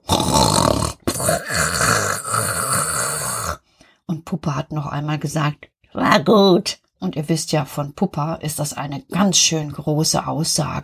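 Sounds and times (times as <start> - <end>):
human voice imitating loud rasping snoring: 0.0 - 3.6
speech: 4.4 - 10.8.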